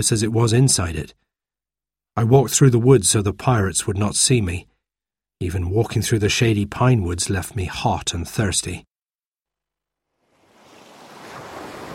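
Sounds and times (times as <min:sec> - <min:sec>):
speech: 0:00.0 - 0:01.3, 0:02.2 - 0:04.8, 0:05.4 - 0:08.9
ocean waves breaking on a beach: 0:10.3 - 0:11.9.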